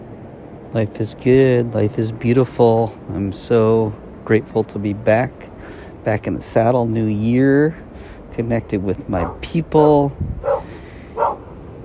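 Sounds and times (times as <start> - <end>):
low steady hum: 0.0 - 11.8
speech: 0.7 - 10.5
dog barking: 9.2 - 9.4, 10.4 - 11.5.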